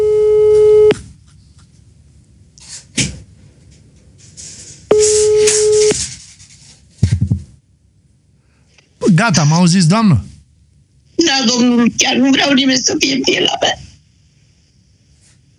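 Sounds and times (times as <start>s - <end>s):
buzzing telephone tone after dialing a call: 0.0s - 0.9s, 4.9s - 6.0s
speech: 9.2s - 10.3s, 11.4s - 13.8s.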